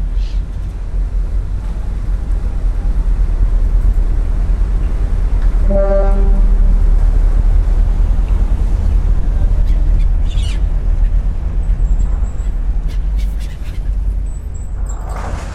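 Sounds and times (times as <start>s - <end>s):
ferry engine rumble at a pier: 0.0s - 15.5s
wind noise: 0.0s - 15.5s
ferry horn blast: 5.6s - 6.9s.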